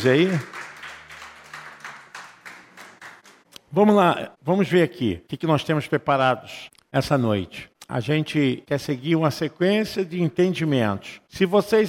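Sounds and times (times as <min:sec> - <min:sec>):
speech: 0:00.0 - 0:00.6, 0:03.7 - 0:11.8
crowd applauding in a reverberant room: 0:00.0 - 0:03.6.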